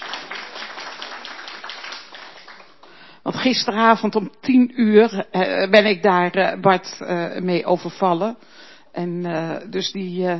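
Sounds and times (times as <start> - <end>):
crowd applauding at an informal farewell gathering: 0.0 - 2.9
speech: 3.4 - 10.3.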